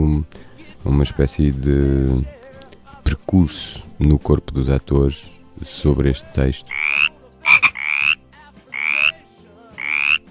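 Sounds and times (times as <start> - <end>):
speech: 0.2 - 2.4, 3.1 - 6.8
frog croaking: 6.7 - 9.2, 9.8 - 10.2.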